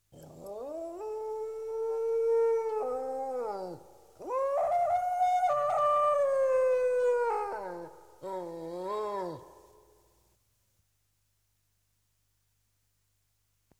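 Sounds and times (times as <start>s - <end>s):
coyote wolf: 0.1s - 9.8s.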